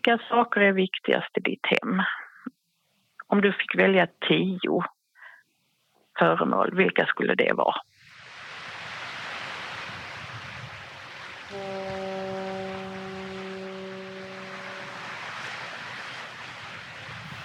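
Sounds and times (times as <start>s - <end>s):
speech: 0.0s - 2.6s, 3.3s - 5.0s, 6.2s - 7.9s
sea and wind noise: 7.8s - 17.4s
foghorn blast over the sea: 11.4s - 17.4s.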